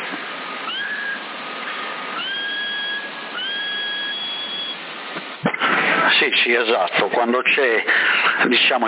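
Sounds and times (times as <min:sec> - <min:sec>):
constant hissy CB radio noise: 0:00.0 - 0:08.8
person whistling over CB radio near Sassari: 0:02.2 - 0:04.8
speech: 0:06.5 - 0:08.8.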